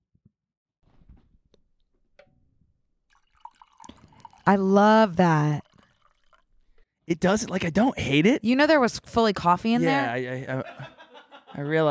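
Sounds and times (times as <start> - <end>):
liquid pouring into a glass: 3.1 - 6.8
speech: 4.5 - 5.6, 7.1 - 11.8
laughter: 10.4 - 11.8.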